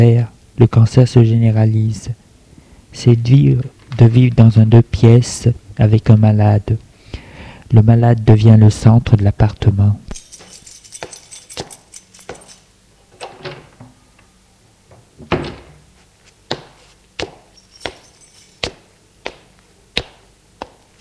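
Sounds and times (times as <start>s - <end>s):
speech: 0.0s - 2.2s, 2.9s - 6.8s, 7.7s - 10.0s
door being unlocked and opened with keys: 10.1s - 13.8s, 17.6s - 18.8s.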